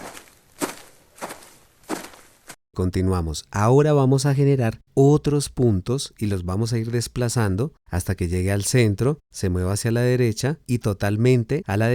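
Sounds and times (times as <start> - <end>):
footsteps: 0.0 - 2.6
speech: 2.8 - 11.9.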